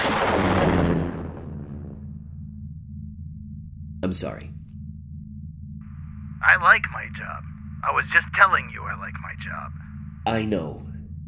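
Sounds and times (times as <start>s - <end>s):
roaring blast for a space probe launch with bombs dropped: 0.0s - 2.3s
speech: 4.1s - 4.6s, 6.4s - 11.2s.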